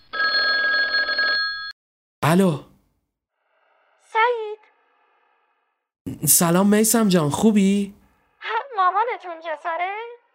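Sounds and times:
telephone ringing with electronic bell-like trill: 0:00.0 - 0:01.8
speech: 0:02.3 - 0:02.7, 0:06.2 - 0:08.0, 0:08.8 - 0:10.1.

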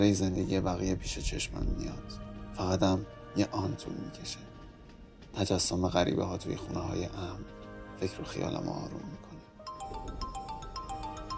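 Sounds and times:
speech: 0:00.0 - 0:04.5, 0:05.3 - 0:09.3
mobile phone ringtone on a train: 0:09.6 - 0:11.3.

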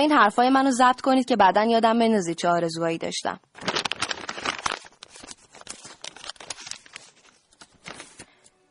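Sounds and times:
speech: 0:00.0 - 0:03.7
paper being folded into a paper airplane: 0:03.6 - 0:08.5.

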